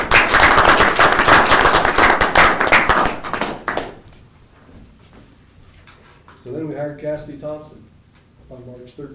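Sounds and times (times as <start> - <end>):
crowd applauding for a staff member: 0.0 - 4.0
speech: 6.8 - 7.9, 8.5 - 9.1.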